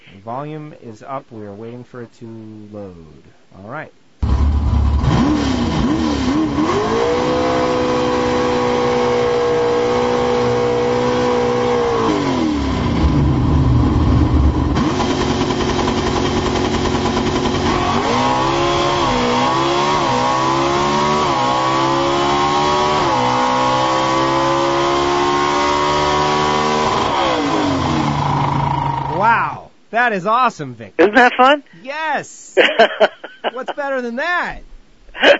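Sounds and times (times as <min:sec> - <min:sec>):
speech: 0:00.2 - 0:04.0, 0:30.1 - 0:35.3
drag racing car engine revving through gear changes inside the car: 0:04.2 - 0:29.2
laughter: 0:31.0 - 0:31.6, 0:32.6 - 0:34.0, 0:35.2 - 0:35.3.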